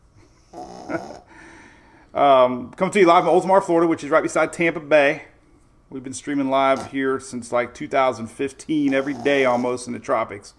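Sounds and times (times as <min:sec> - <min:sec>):
dog snoring while being petted: 0:00.4 - 0:01.3, 0:08.9 - 0:09.8
speech: 0:02.2 - 0:05.3, 0:05.9 - 0:10.5.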